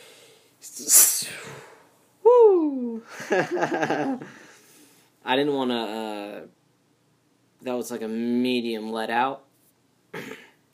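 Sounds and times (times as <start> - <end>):
person sneezing: 0.8 - 1.8, 10.2 - 10.6
speech: 0.8 - 1.8, 3.0 - 4.4, 5.2 - 6.6, 7.6 - 9.4, 10.1 - 10.4.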